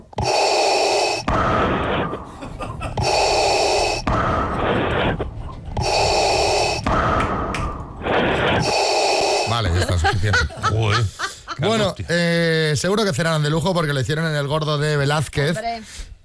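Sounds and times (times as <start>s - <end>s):
voice imitating heavy mechanical mask breathing: 0.0s - 10.5s
laughter: 1.9s - 6.4s, 9.5s - 12.2s
speech: 11.6s - 16.2s.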